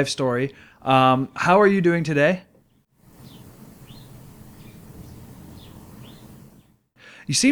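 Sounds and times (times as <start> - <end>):
speech: 0.0 - 2.5, 7.3 - 7.4
bird chirping: 2.6 - 6.8.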